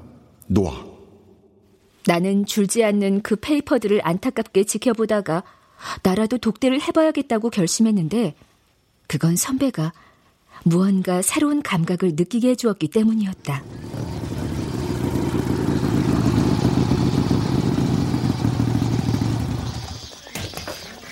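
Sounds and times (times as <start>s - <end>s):
speech: 0.5s - 0.9s, 2.0s - 8.5s, 9.1s - 14.0s
motorcycle engine rumbling: 13.4s - 21.0s.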